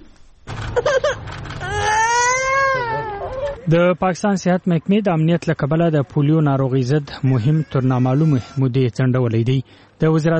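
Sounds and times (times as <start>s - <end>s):
speech: 0.8s - 2.0s, 3.7s - 10.3s
children crying with whimpering sobs and high-pitched wail: 0.8s - 3.7s, 7.3s - 8.7s.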